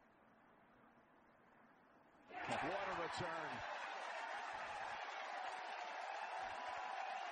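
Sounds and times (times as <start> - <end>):
large crowd cheering and applauding at a golf tournament: 2.3 - 7.3
speech: 2.6 - 4.0.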